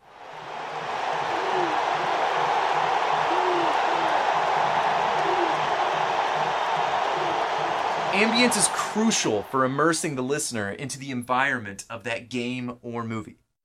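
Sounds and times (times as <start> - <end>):
roar of a large sports game crowd: 0.0 - 10.2
low hooting calls: 0.4 - 8.0
speech: 8.2 - 13.4.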